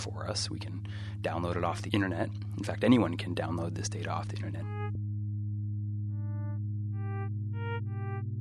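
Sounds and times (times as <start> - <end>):
speech: 0.0 - 5.0
steady low hum from sonified volcano ground deformation data: 0.0 - 8.3
computer-generated pure electronic tones from sonified volcano data: 4.5 - 5.0, 6.0 - 8.3.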